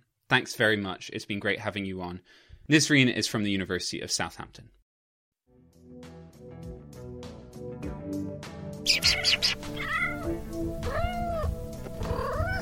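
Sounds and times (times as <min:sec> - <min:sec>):
speech: 0:00.3 - 0:04.8
steady musical backing: 0:06.9 - 0:12.6
kittens meowing: 0:08.9 - 0:12.6.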